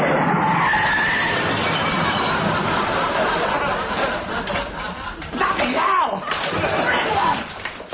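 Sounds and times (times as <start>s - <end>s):
heavy articulated lorry skidding with a screech and rumbling roar: 0.0s - 5.2s
laughter: 1.7s - 7.8s.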